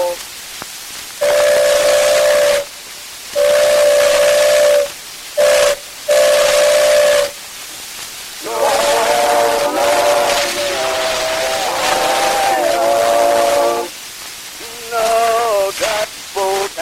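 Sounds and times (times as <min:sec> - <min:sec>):
steamboat whistle blowing: 0:00.0 - 0:00.2, 0:01.2 - 0:02.7, 0:03.4 - 0:07.4, 0:08.4 - 0:13.9
hissing steam: 0:00.0 - 0:16.8.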